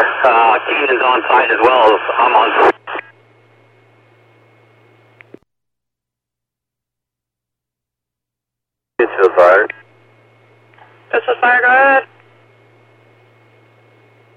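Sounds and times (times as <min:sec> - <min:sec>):
garbled voices over fire department radio: 0:00.0 - 0:03.0, 0:09.0 - 0:09.8, 0:10.8 - 0:12.1
crackly fire department radio transmission static: 0:00.0 - 0:03.3, 0:09.0 - 0:14.3
faint low hum: 0:00.0 - 0:05.4, 0:09.0 - 0:14.3
speech: 0:00.2 - 0:02.8, 0:09.0 - 0:09.8, 0:11.1 - 0:12.2.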